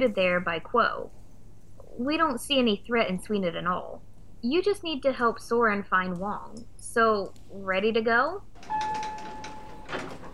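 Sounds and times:
speech: 0.0 - 1.2, 2.0 - 8.8
automatic bookstore door sliding open with soft whooshing: 8.5 - 10.3.

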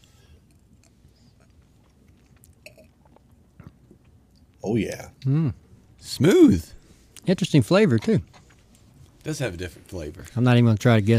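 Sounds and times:
person sipping bourbon from a glass: 0.0 - 4.1
speech: 4.6 - 8.4, 9.2 - 11.1.

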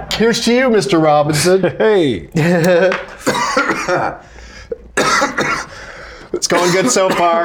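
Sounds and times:
speech: 0.2 - 4.4, 6.3 - 7.4
laughter: 1.4 - 4.2
man coughing after smoking: 3.2 - 5.8, 6.5 - 7.4.

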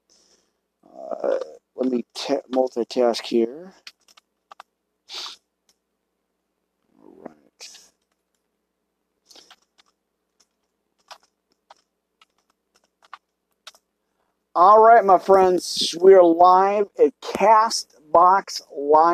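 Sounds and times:
speech: 1.8 - 3.9, 14.6 - 19.1
computer keyboard clicking from a stuck key: 3.8 - 4.7, 9.3 - 13.8.

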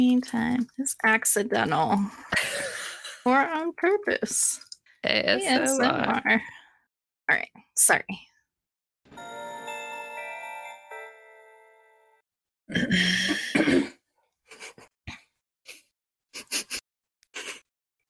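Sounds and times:
speech: 0.0 - 6.6, 7.3 - 8.3, 12.7 - 13.9
bell-like chime: 9.1 - 12.2
two people coughing: 12.8 - 14.0.

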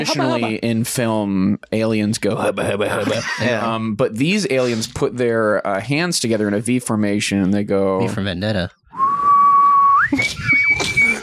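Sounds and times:
laughter: 0.0 - 0.7
speech: 0.0 - 9.0, 10.1 - 10.4
person whistling a short tune: 8.9 - 11.2.

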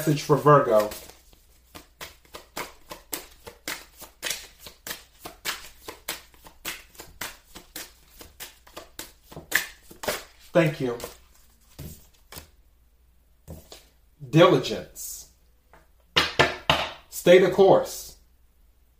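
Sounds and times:
speech: 0.0 - 1.1, 10.6 - 11.2, 14.3 - 15.1, 17.2 - 18.1
playing cards being shuffled by hand during a card reading: 0.0 - 12.6.

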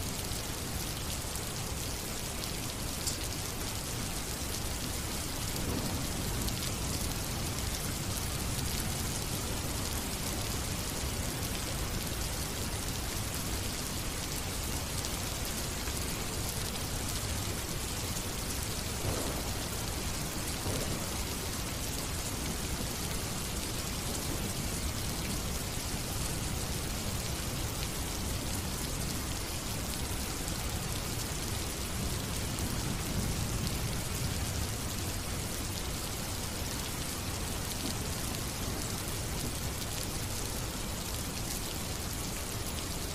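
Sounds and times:
steady dense rain: 0.0 - 43.1
low thunder rumbling: 19.0 - 19.7.

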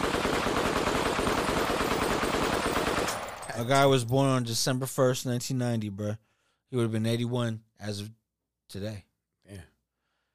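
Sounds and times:
rapid automatic gunfire: 0.0 - 3.5
speech: 3.6 - 9.7.

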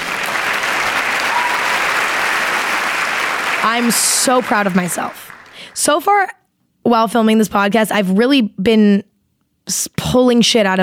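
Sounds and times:
applause: 0.0 - 5.9
speech: 3.6 - 9.1, 9.7 - 10.8.

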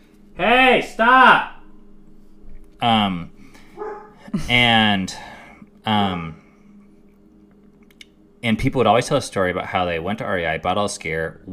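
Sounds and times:
faint hum: 0.0 - 11.5
speech: 0.4 - 1.5, 2.8 - 3.3, 4.3 - 6.4, 8.4 - 11.5
dog barking: 3.8 - 4.2.

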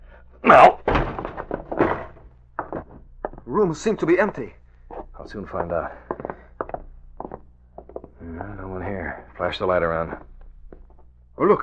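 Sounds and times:
speech: 0.5 - 0.8, 3.6 - 4.6, 5.3 - 6.0, 9.4 - 10.3, 11.4 - 11.6
door being kicked open: 0.5 - 2.9
door settling bumps: 0.8 - 3.5.

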